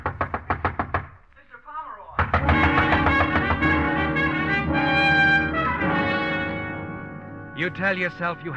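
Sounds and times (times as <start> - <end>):
bellboy pounding on a door: 0.0 - 1.2, 2.2 - 4.2
dramatic music swell: 2.6 - 8.5
speech: 7.6 - 8.5.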